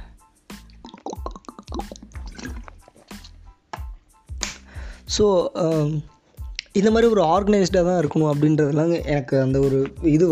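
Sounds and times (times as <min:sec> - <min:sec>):
water being poured: 0:00.6 - 0:03.4
speech: 0:05.1 - 0:06.2, 0:06.8 - 0:10.2.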